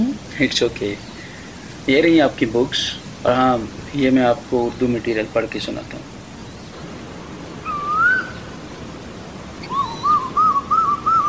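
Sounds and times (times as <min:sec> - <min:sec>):
faint steady hiss: 0:00.0 - 0:11.2
speech: 0:00.4 - 0:01.1, 0:01.8 - 0:06.1
Asian koel calling: 0:07.5 - 0:08.9, 0:09.5 - 0:11.2.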